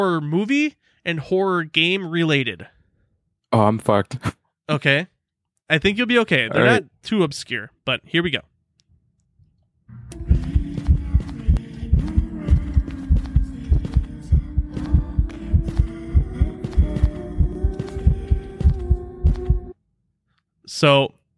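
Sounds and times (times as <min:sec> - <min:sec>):
speech: 0:00.0 - 0:02.8, 0:03.5 - 0:05.1, 0:05.7 - 0:08.5, 0:20.7 - 0:21.2
horror video game heartbeat sound effect thumping: 0:10.2 - 0:19.7.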